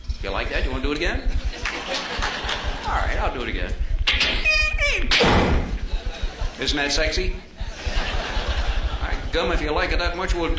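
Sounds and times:
speech: 0:00.2 - 0:03.9, 0:06.6 - 0:07.5, 0:09.3 - 0:10.5
laughter: 0:01.0 - 0:04.0, 0:05.8 - 0:10.5
front door banging shut with a rattling tail: 0:05.1 - 0:05.9.

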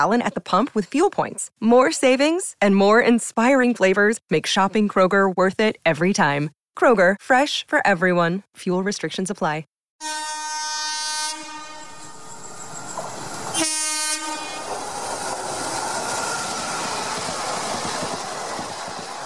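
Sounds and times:
speech: 0:00.0 - 0:10.3
train horn blaring: 0:10.0 - 0:12.6, 0:13.5 - 0:14.7
train rumbling past up close with roar and clatter: 0:11.4 - 0:19.2.

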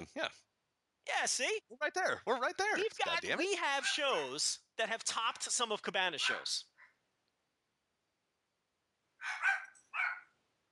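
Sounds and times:
speech: 0:00.0 - 0:06.7
dog barks from upstairs: 0:03.8 - 0:04.2, 0:06.2 - 0:06.5, 0:09.2 - 0:10.3.

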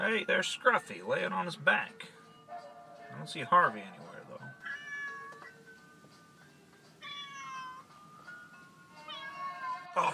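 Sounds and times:
speech: 0:00.1 - 0:02.2, 0:03.2 - 0:04.1
cat meowing in long wavering cries: 0:04.6 - 0:05.6, 0:07.0 - 0:07.9, 0:09.0 - 0:10.1.

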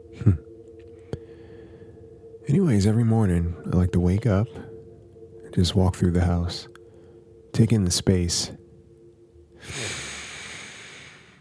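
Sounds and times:
single long slow breath in a quiet morning setting: 0:01.0 - 0:02.4, 0:06.8 - 0:07.5, 0:09.5 - 0:11.4
speech: 0:02.5 - 0:04.7, 0:05.6 - 0:06.7, 0:07.6 - 0:08.6.

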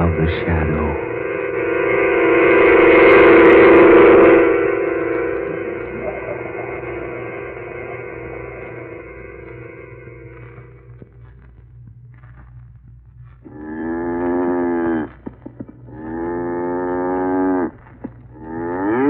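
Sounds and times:
low hum: 0:00.0 - 0:19.0
cow mooing: 0:13.5 - 0:15.3, 0:15.9 - 0:19.0.

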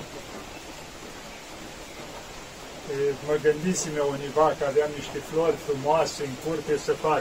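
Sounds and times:
rain falling outside heard from a balcony: 0:00.0 - 0:07.1
tonal murmur: 0:00.0 - 0:07.1
speech: 0:02.9 - 0:07.1.

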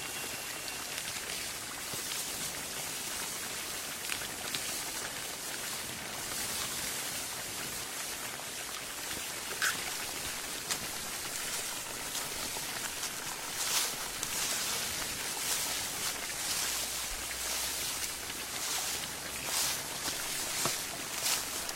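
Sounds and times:
crisp leaves crackling and rustling on an autumn night: 0:00.0 - 0:21.7
sharper bursts of leaves crunching: 0:09.4 - 0:21.7.

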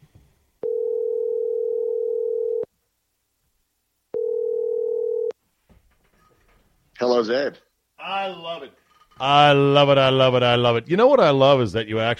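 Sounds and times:
steady telephone tone: 0:00.6 - 0:02.7, 0:04.2 - 0:05.4
speech: 0:07.2 - 0:12.1.

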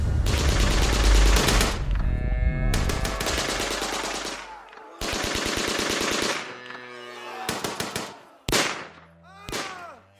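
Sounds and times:
sharp shots: 0:00.0 - 0:01.9, 0:02.7 - 0:06.5, 0:07.4 - 0:09.8
rapid automatic machine gun fire: 0:00.2 - 0:01.9, 0:02.8 - 0:06.5, 0:07.5 - 0:09.7.

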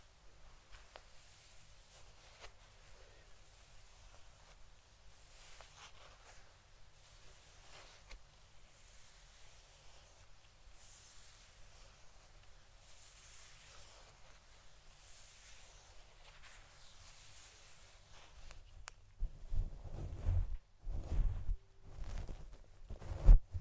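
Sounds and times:
fluffy microphone cover rubbed and brushed: 0:00.0 - 0:23.6
deep thumps and rumbling scrapes on a fluffy microphone cover: 0:19.2 - 0:23.6.

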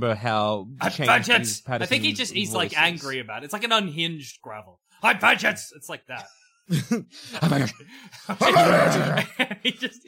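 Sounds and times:
speech: 0:00.0 - 0:10.0
man laughing: 0:06.2 - 0:10.0
man imitating a dog barking and growling: 0:08.4 - 0:09.2.

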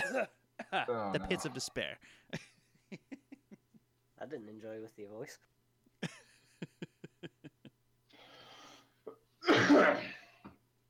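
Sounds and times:
short harsh coughs: 0:00.0 - 0:00.4, 0:09.4 - 0:10.5
speech: 0:00.2 - 0:03.2, 0:04.2 - 0:07.4
raspy breath: 0:08.1 - 0:09.0.

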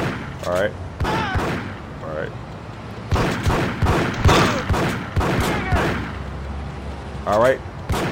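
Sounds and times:
speech: 0:00.5 - 0:00.9, 0:02.2 - 0:02.5, 0:07.3 - 0:07.7
gunfire in a video game: 0:01.0 - 0:01.8, 0:03.1 - 0:06.2, 0:07.9 - 0:08.0.

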